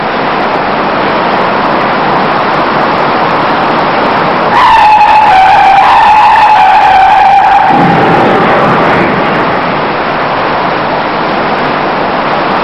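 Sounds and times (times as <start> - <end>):
steady roar of road noise: 0.0 - 12.6
long loud tire screech as cars brake hard and skid: 3.6 - 10.8.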